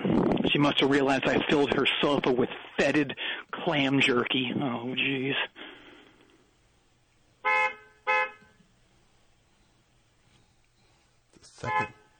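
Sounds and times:
quiet hum: 0.0s - 12.1s
speech: 0.5s - 5.6s, 11.5s - 12.0s
car with two horns honking: 7.4s - 8.6s, 11.6s - 12.1s.

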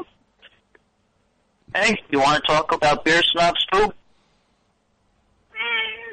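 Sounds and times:
speech: 1.8s - 4.0s
house cat meowing: 5.5s - 6.1s.

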